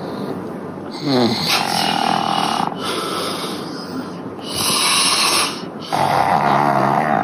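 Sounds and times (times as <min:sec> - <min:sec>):
heavyset man snoring asleep on a couch: 0:00.9 - 0:03.0, 0:04.4 - 0:07.2
pug dog snoring asleep on a couch: 0:00.9 - 0:03.7, 0:04.4 - 0:07.2.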